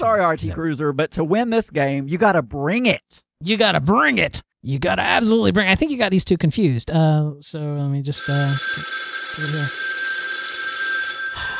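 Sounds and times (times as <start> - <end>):
speech: 0.0 - 9.8
telephone bell ringing: 8.2 - 11.5.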